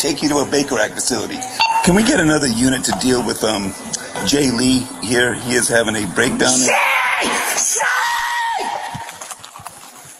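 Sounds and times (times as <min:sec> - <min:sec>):
speech: 0:00.0 - 0:07.9
rough noisy breathing: 0:03.5 - 0:05.6
man letting out a loud strained shout: 0:06.5 - 0:08.8.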